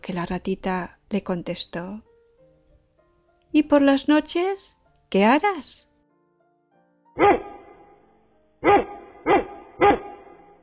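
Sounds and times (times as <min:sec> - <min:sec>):
speech: 0:00.0 - 0:02.1, 0:03.5 - 0:05.9, 0:07.2 - 0:07.5
dog barking: 0:07.2 - 0:08.0, 0:08.6 - 0:10.6.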